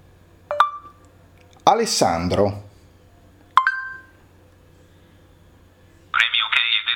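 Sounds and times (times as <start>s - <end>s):
phone electronic prompt beep signaling voice dictation: 0.5s - 1.0s, 3.6s - 4.1s
speech: 1.6s - 2.7s.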